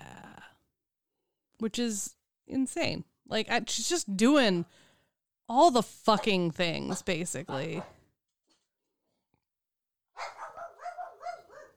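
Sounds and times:
speech: 1.6s - 4.8s, 5.5s - 8.0s
dogs barking and yapping: 6.2s - 8.0s, 10.2s - 11.7s.

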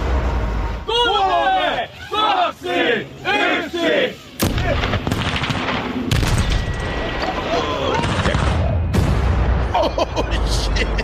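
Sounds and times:
crowd noise: 0.1s - 6.1s, 6.7s - 9.0s
excited shouting voices: 0.8s - 4.9s
huge blast of a Tesla Model S blown up: 4.4s - 9.9s
laughter: 7.1s - 8.7s, 9.7s - 11.0s.

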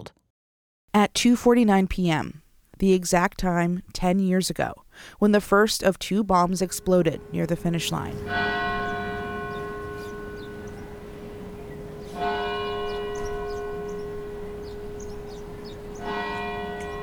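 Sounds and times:
speech: 1.0s - 8.8s
Old South Church bells tolling: 6.4s - 17.0s.

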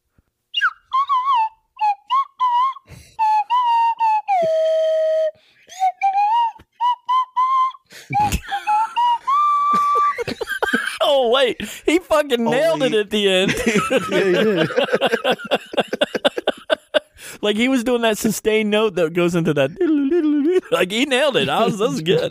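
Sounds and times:
slide whistle playing a melody: 0.5s - 10.1s
laughter: 8.1s - 17.2s, 19.8s - 22.3s
speech: 11.4s - 15.8s, 17.4s - 20.0s, 20.7s - 22.3s.

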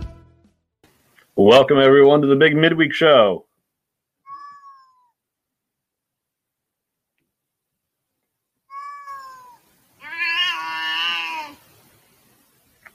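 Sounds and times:
speech: 1.4s - 3.5s
cat meowing: 4.2s - 5.2s, 8.7s - 11.6s.

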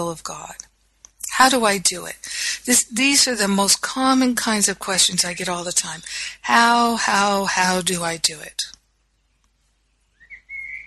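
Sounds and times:
speech: 0.0s - 0.6s, 1.4s - 8.8s
bird singing whistled notes: 10.0s - 10.8s.

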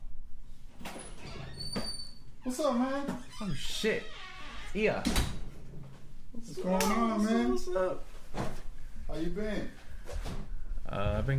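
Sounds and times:
door opening for a visitor: 0.8s - 5.9s
speech: 2.5s - 5.3s, 6.4s - 8.5s, 9.1s - 10.2s, 10.9s - 11.3s.

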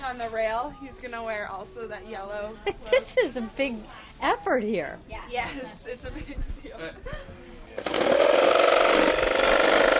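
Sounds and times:
speech: 0.1s - 8.5s
power tool running with a rattling buzz: 7.8s - 9.9s.

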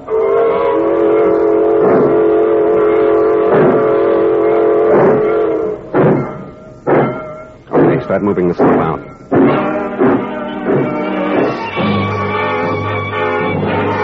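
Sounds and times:
freight train whistle blowing: 0.0s - 8.1s, 9.0s - 14.0s
sharp clanks: 4.9s - 14.0s
speech: 8.2s - 9.1s.

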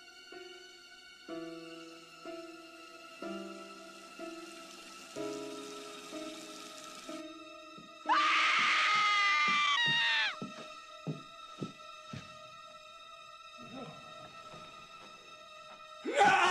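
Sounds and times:
girl's high piercing scream in a film scene: 8.1s - 10.4s.

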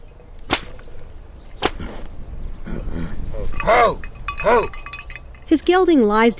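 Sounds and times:
low outdoor rumble: 0.0s - 6.3s
long hand-woven whip cracking in air: 0.4s - 0.9s, 1.6s - 1.9s
speech: 3.7s - 4.8s, 5.5s - 6.3s.

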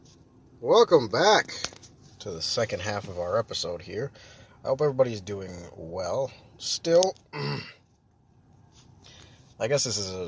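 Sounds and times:
speech: 0.6s - 7.8s, 9.6s - 10.2s
person clearing throat from throat irritation: 7.4s - 7.8s.

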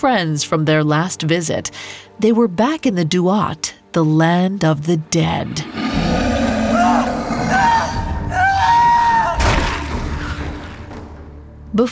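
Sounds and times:
speech: 0.0s - 6.2s, 11.8s - 11.9s
distant agonized scream: 5.4s - 10.8s.

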